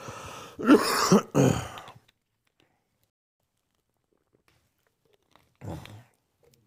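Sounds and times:
rough coughs: 0:00.6 - 0:01.9
harsh throat clearing: 0:00.6 - 0:02.0.

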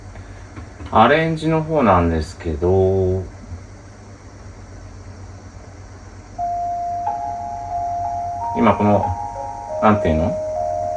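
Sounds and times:
low rumbling hum: 0:00.0 - 0:10.9
speech: 0:00.9 - 0:03.3, 0:08.6 - 0:09.2, 0:09.8 - 0:10.4
bell-like chime tone: 0:06.4 - 0:10.9.

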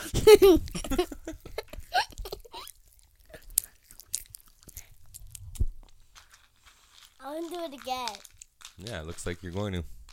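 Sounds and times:
speech: 0:00.2 - 0:01.0, 0:07.6 - 0:10.0
crunchy snack being chewed: 0:01.4 - 0:09.0.

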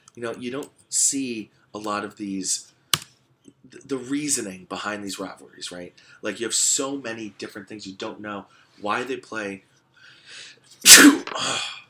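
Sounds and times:
speech: 0:00.2 - 0:02.8, 0:03.6 - 0:09.7, 0:10.3 - 0:11.8
person sneezing: 0:10.8 - 0:11.8.

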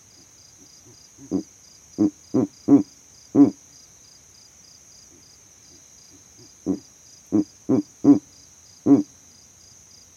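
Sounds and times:
steady high insect drone with a pulsing trill: 0:00.0 - 0:10.1
Verreaux's eagle owl soft grunts: 0:00.8 - 0:03.6, 0:06.4 - 0:09.1
Verreaux's eagle owl hooting in the savanna: 0:01.2 - 0:03.6, 0:06.6 - 0:09.1.

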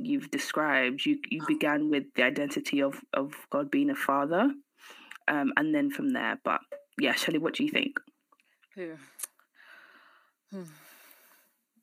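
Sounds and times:
speech: 0:00.1 - 0:08.1, 0:08.8 - 0:09.2, 0:10.5 - 0:10.8
heavy breathing into the microphone: 0:08.9 - 0:11.6
voiced sighs or gasps: 0:09.6 - 0:11.5.

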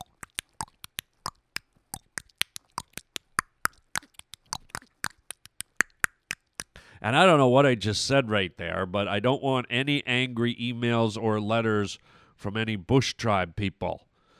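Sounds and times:
voice imitating a click language with tongue and mouth clicks: 0:00.0 - 0:06.8
speech: 0:07.0 - 0:14.1.

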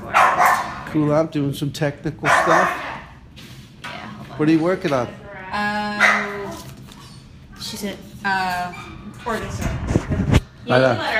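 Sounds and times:
excited dog barking and yelping: 0:00.0 - 0:00.8, 0:02.2 - 0:03.0
steady low hum: 0:00.0 - 0:11.1
speech: 0:00.9 - 0:02.8, 0:04.4 - 0:05.8, 0:07.7 - 0:10.0, 0:10.6 - 0:11.1.

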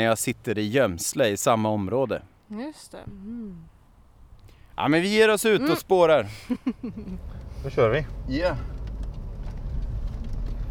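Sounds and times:
speech: 0:00.0 - 0:03.7, 0:04.8 - 0:08.8
car engine running heard inside a car: 0:06.9 - 0:10.6.

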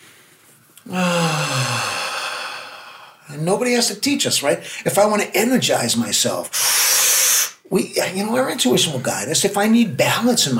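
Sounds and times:
long slow voiced sigh as a peaceful breath: 0:00.8 - 0:03.2
speech: 0:03.4 - 0:10.5.

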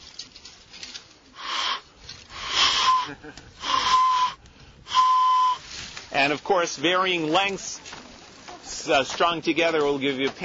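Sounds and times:
breathy whistle blown through a hollow plant stem: 0:02.4 - 0:05.7
speech: 0:03.1 - 0:04.0, 0:06.1 - 0:08.0, 0:08.7 - 0:10.4.

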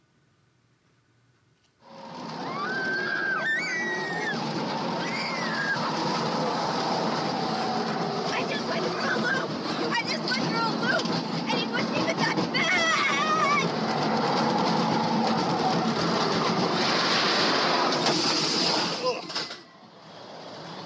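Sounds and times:
looping roller coaster roaring rumble: 0:01.8 - 0:20.8
rushing wind on a looping roller coaster ride: 0:01.9 - 0:18.9
people's voices on a looping roller coaster ride: 0:05.4 - 0:16.6.

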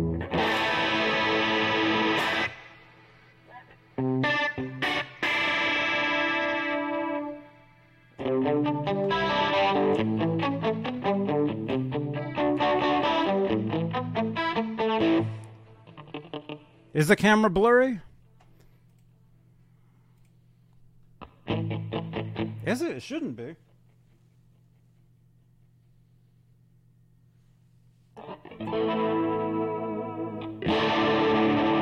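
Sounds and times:
electric guitar played through a chorus effect pedal with added reverb: 0:00.0 - 0:03.3, 0:03.9 - 0:16.9, 0:21.2 - 0:22.7, 0:28.2 - 0:31.8
speech: 0:17.0 - 0:18.1, 0:23.0 - 0:23.7.

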